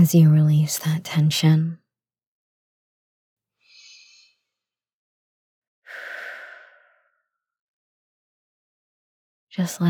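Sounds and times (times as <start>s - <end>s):
speech: 0.0s - 1.8s, 9.6s - 9.8s
slow breathing during a relaxation exercise: 5.8s - 7.4s.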